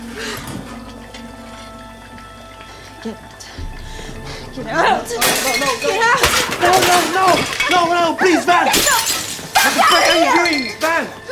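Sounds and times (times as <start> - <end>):
ceramic plates smashing: 3.6 - 10.9.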